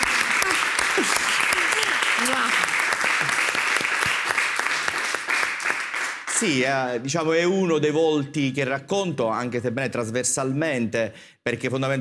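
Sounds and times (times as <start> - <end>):
crowd applauding: 0.0 - 6.8
speech: 6.4 - 11.9.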